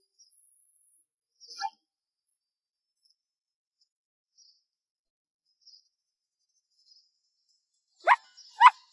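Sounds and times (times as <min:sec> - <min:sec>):
faint short chirp: 0:00.2 - 0:01.9
small lost dog yipping: 0:08.1 - 0:08.8.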